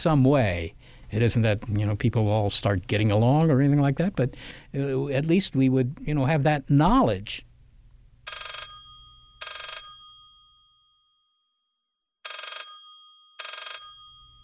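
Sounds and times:
speech: 0.0s - 7.5s
telephone ringing: 8.3s - 10.5s, 12.2s - 14.4s.

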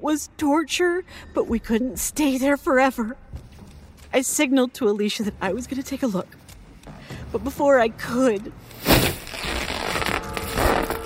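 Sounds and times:
speech: 0.0s - 3.3s, 4.1s - 6.4s, 7.3s - 9.2s
curtain fabric ripping as a scythe blade slices down through it: 8.8s - 11.0s.

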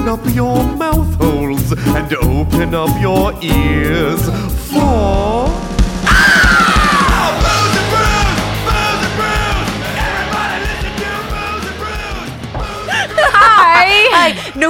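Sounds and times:
speech: 0.1s - 0.8s, 1.7s - 5.6s
person screaming loudly: 6.0s - 9.0s
high shrieking: 6.0s - 12.4s
laughter: 9.7s - 14.6s.

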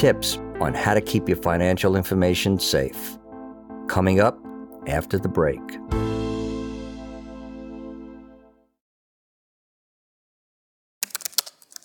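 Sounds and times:
speech: 0.0s - 3.2s, 3.9s - 6.1s
typing on a computer keyboard: 11.0s - 11.8s.

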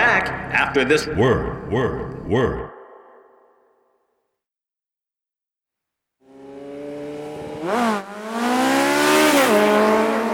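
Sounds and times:
speech: 0.2s - 2.7s
Suzuki GSX-R750 sport motorcycle accelerating hard down a street: 6.2s - 10.3s.

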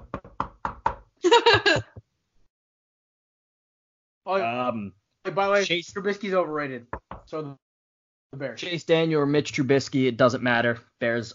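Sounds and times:
sharp knocks on wood: 0.0s - 1.1s, 6.9s - 7.3s
laughter: 1.2s - 2.0s
speech: 1.3s - 1.9s, 4.3s - 7.6s, 8.3s - 11.3s.

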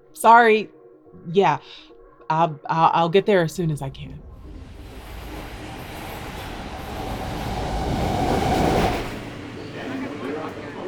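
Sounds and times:
speech: 0.1s - 4.2s
subway train rumbling and rattling along the rails, heard from inside: 3.7s - 10.8s.

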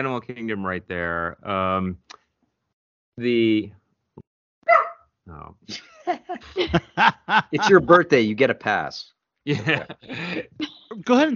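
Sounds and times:
speech: 0.0s - 2.2s, 3.2s - 3.8s, 4.7s - 11.3s
pet dog barking: 4.7s - 5.0s
laughter: 5.7s - 8.1s, 9.5s - 11.3s.

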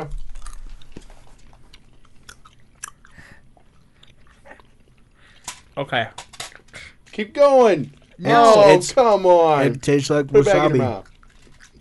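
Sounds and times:
gum being chewed: 0.1s - 5.4s, 11.0s - 11.7s
speech: 5.8s - 6.2s, 7.2s - 11.1s.

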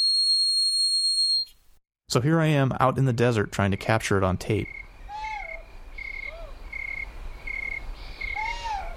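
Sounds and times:
speech: 2.1s - 4.8s
insect trill: 3.7s - 8.9s
two owls fighting at night: 4.6s - 6.6s, 8.0s - 8.9s.

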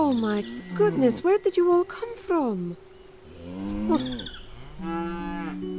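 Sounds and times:
speech: 0.1s - 2.9s, 3.5s - 5.2s
cows mooing: 3.2s - 5.6s.

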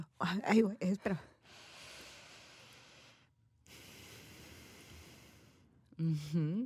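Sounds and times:
speech: 0.2s - 1.7s, 6.0s - 6.6s
person imitating slow heavy breathing: 1.4s - 6.2s.

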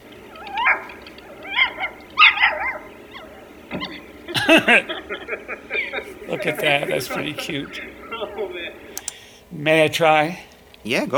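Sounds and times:
dog yipping and whining: 0.3s - 4.0s
laughter: 3.7s - 8.9s
speech: 4.5s - 5.6s, 6.3s - 8.8s, 9.5s - 11.1s.

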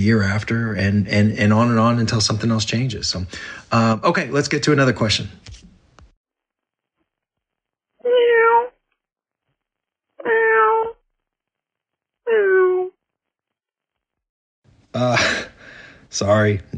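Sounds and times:
speech: 0.0s - 5.6s, 16.1s - 16.7s
caller phoning in imitating cat meows and yowl: 8.0s - 8.7s, 10.2s - 11.0s, 12.3s - 12.9s.

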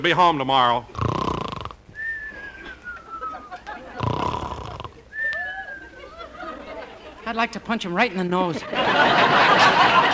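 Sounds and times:
speech: 0.0s - 1.1s, 7.3s - 10.1s
man snoring loudly: 0.9s - 1.8s, 4.0s - 5.0s
laughter: 2.3s - 7.4s, 8.4s - 10.1s
sleepy mumbling: 3.9s - 5.0s.

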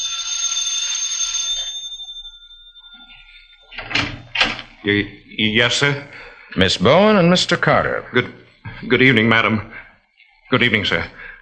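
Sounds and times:
doorbell chime: 0.0s - 4.4s
speech: 4.8s - 9.8s, 10.5s - 11.2s.

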